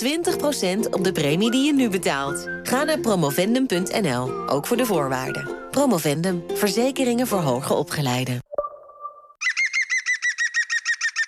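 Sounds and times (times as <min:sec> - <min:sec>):
speech: 0:00.0 - 0:08.5
European green woodpecker laughing call: 0:09.4 - 0:11.2.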